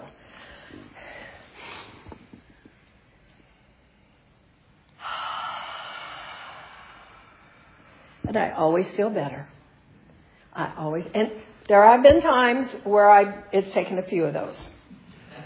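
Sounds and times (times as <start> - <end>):
group breathing deeply during a guided breathing exercise: 0.1 - 2.8, 5.0 - 8.2
speech: 8.3 - 9.5, 10.6 - 14.7.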